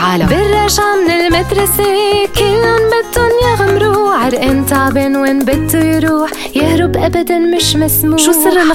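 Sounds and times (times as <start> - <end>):
singing commercial jingle: 0.2 - 8.6.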